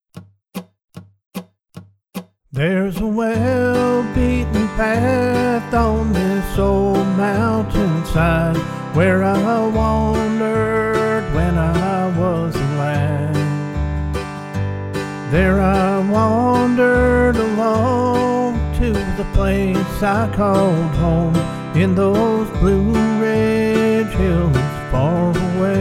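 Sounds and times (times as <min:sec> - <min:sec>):
person singing: 0:02.6 - 0:13.8, 0:15.2 - 0:25.7
backing track music in key of G at 75 bpm: 0:03.4 - 0:25.7.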